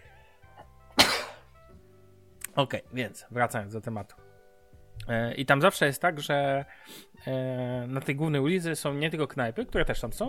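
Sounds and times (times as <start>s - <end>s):
stifled cough or half-sneeze: 1.0s - 1.5s
speech: 2.6s - 4.3s, 5.1s - 10.2s.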